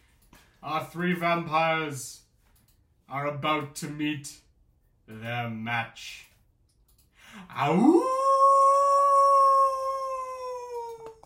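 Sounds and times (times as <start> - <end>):
speech: 0.6 - 2.2, 3.1 - 4.4, 5.1 - 6.3, 7.3 - 8.1
wolf-like howl standing in for a werewolf: 7.7 - 11.2.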